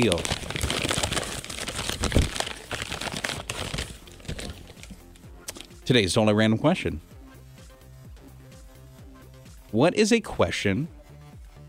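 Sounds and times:
speech: 0:00.0 - 0:00.4, 0:05.9 - 0:07.1, 0:09.7 - 0:11.0
hand rummaging through scratch paper slips in a box: 0:00.0 - 0:05.0.

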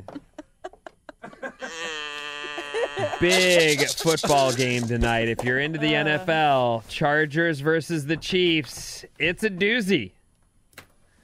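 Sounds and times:
laughter: 0:00.0 - 0:06.6
goat bleating: 0:01.6 - 0:05.1
speech: 0:03.0 - 0:10.2.

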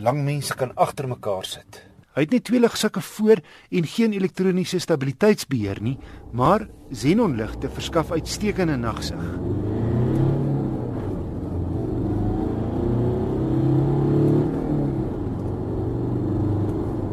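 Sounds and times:
speech: 0:00.0 - 0:09.7
2.5-litre car engine accelerating through five gears: 0:05.7 - 0:17.1.

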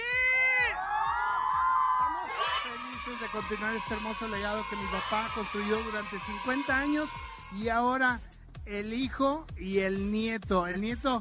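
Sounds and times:
large outdoor crowd on an esplanade shouting and cheering for a performer: 0:00.0 - 0:08.2
speech: 0:03.2 - 0:11.1.

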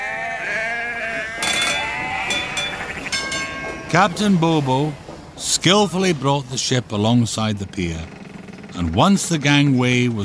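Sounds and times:
large flock of sheep bleating: 0:00.0 - 0:03.8
speech: 0:03.9 - 0:08.2, 0:08.8 - 0:10.2.

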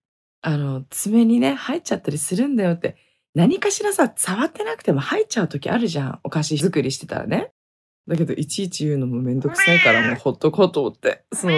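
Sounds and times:
speech: 0:00.4 - 0:11.5
cat meowing loudly: 0:09.5 - 0:10.2, 0:11.4 - 0:11.5.

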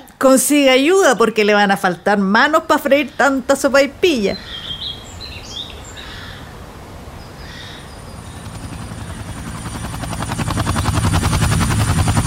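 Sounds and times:
speech: 0:00.2 - 0:04.6
bird calls: 0:02.5 - 0:09.6
helicopter rotor thudding: 0:08.3 - 0:12.2.

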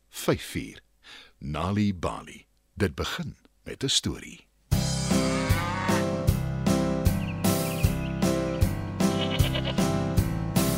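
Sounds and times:
speech: 0:00.2 - 0:04.5
sheep-like bleats: 0:05.0 - 0:06.2, 0:09.0 - 0:09.8
upbeat musical backing with a steady regular beat: 0:06.0 - 0:10.7.

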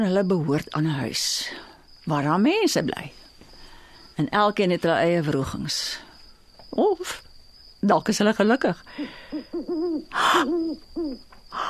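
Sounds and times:
speech: 0:00.0 - 0:03.2, 0:04.2 - 0:06.0, 0:06.7 - 0:07.2, 0:07.8 - 0:11.6
owl hooting: 0:08.9 - 0:11.6.

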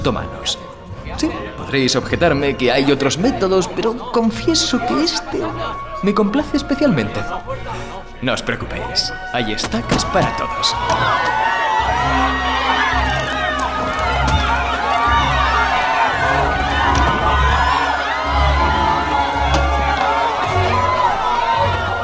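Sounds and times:
speech: 0:00.0 - 0:11.3
large crowd screaming and wailing in agony: 0:09.7 - 0:22.0.

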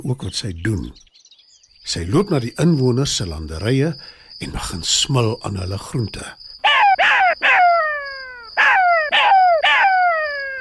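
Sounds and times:
speech: 0:00.0 - 0:01.1, 0:01.8 - 0:06.4
jackal howling: 0:06.6 - 0:10.5.

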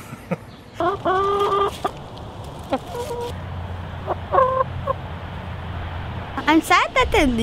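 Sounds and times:
speech: 0:00.3 - 0:01.8, 0:06.5 - 0:07.4
backyard chickens clucking: 0:00.6 - 0:03.4, 0:04.0 - 0:05.0.

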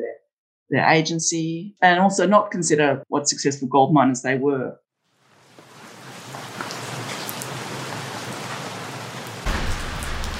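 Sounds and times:
speech: 0:00.7 - 0:04.8
rain falling on a street: 0:05.2 - 0:10.3.

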